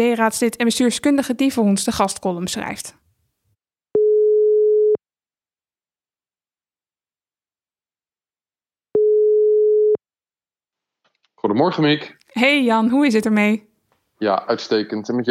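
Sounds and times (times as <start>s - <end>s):
speech: 0.0s - 3.0s, 11.4s - 15.3s
telephone ringback tone while a call connects: 4.0s - 5.0s, 9.0s - 10.0s.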